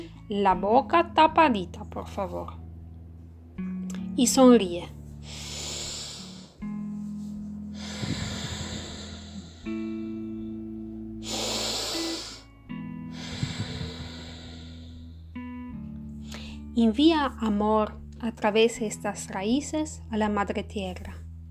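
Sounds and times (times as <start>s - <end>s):
speech: 0.0s - 2.6s, 3.6s - 5.5s, 16.8s - 21.2s
gentle sustained music tones: 0.0s - 21.4s
slow breathing in and out through the nose during a guided breathing exercise: 5.2s - 6.7s, 7.7s - 10.2s, 11.2s - 12.5s, 13.1s - 15.3s, 16.2s - 16.6s.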